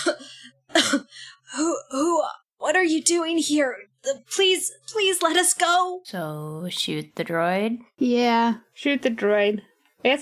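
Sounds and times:
woman coughing: 0:00.0 - 0:01.4
speech: 0:02.9 - 0:10.2.

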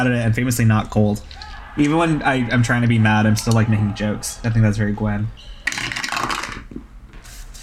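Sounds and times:
speech: 0:00.0 - 0:06.0
dice rolling across a hard surface: 0:05.7 - 0:06.8.

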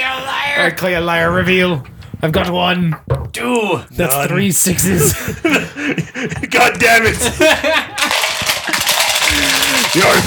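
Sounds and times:
speech: 0:00.6 - 0:07.9, 0:10.0 - 0:10.2
laughter: 0:04.8 - 0:10.2
dice clattering onto a hard table: 0:08.0 - 0:10.2.

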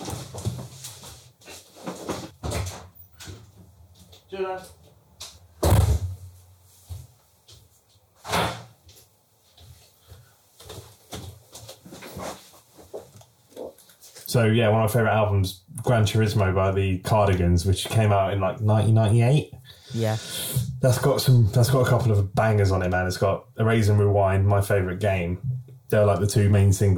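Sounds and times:
speech: 0:04.3 - 0:04.8, 0:14.4 - 0:26.9
heavy door bang: 0:05.6 - 0:06.3
door opening and closing: 0:08.2 - 0:08.7.

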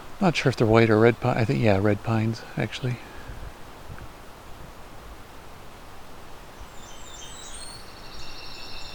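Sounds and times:
rustling breezy woodland noise: 0:00.0 - 0:08.9
speech: 0:00.2 - 0:03.1
ovenbird singing: 0:01.3 - 0:03.2, 0:06.6 - 0:08.9.

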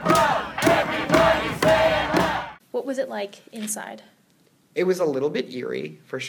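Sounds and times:
protest crowd chanting union slogans outside an event: 0:00.0 - 0:02.6
speech: 0:02.9 - 0:04.2, 0:04.8 - 0:06.2.

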